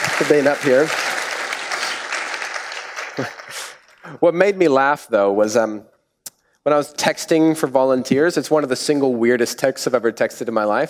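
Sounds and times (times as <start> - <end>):
audience applause: 0.0 - 4.0
speech: 0.2 - 1.1, 3.2 - 5.9, 6.6 - 10.8
laughter: 3.0 - 3.8.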